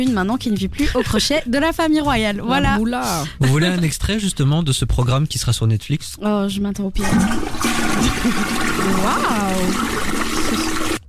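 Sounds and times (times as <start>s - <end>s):
speech: 0.0s - 10.7s
toilet flushing: 7.0s - 11.0s.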